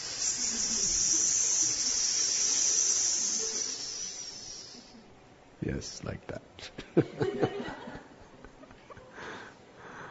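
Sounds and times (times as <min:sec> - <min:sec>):
voice imitating a hissing snake: 0:00.0 - 0:05.0
speech: 0:05.6 - 0:07.9
laughter: 0:06.7 - 0:09.3.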